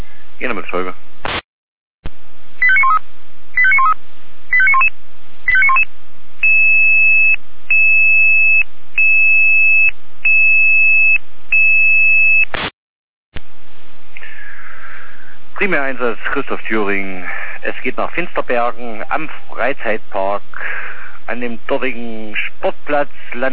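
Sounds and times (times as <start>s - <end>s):
speech: 0.4s - 1.1s, 15.7s - 23.5s
radio-transmitted fire brigade dispatch alarm tones: 2.6s - 3.0s, 3.6s - 4.9s, 5.5s - 12.5s.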